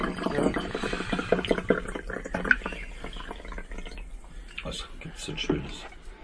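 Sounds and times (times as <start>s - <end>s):
Chardonnay wine pouring into a glass: 0.0s - 4.7s.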